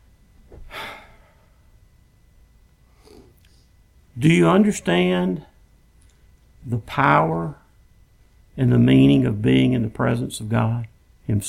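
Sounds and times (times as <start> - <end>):
deep breath taken during a sermon: 0.5 - 1.8, 2.9 - 3.8
speech: 4.2 - 5.5, 6.6 - 7.6, 8.6 - 11.4.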